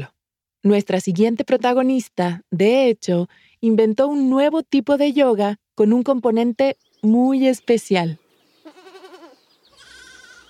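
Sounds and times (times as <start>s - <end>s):
speech: 0.0s - 8.2s
goat bleating: 8.6s - 10.4s.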